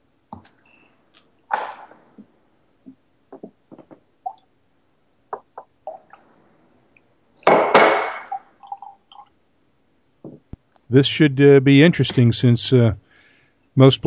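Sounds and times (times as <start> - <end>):
water poured into a glass of blended whisky: 8.4 - 9.3
speech: 10.9 - 13.1, 13.8 - 14.0.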